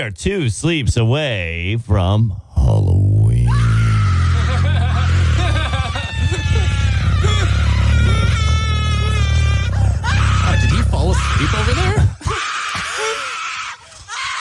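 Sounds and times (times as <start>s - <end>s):
speech: 0.0s - 3.0s, 11.4s - 12.0s
low hum: 2.4s - 12.6s
woman screaming excitedly: 3.5s - 14.3s
woman laughing: 4.2s - 10.3s.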